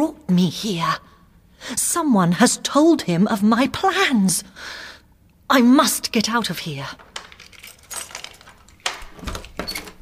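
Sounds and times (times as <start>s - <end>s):
speech: 0.0s - 4.9s, 5.5s - 7.1s
door being opened with latch and handle clicking and rattling: 7.0s - 10.0s.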